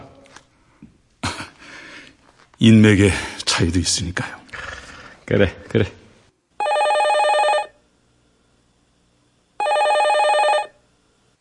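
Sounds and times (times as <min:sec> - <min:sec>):
speech: 0:02.6 - 0:04.4, 0:05.3 - 0:06.0
telephone ringing with a trilling bell: 0:06.6 - 0:07.8, 0:09.6 - 0:10.8.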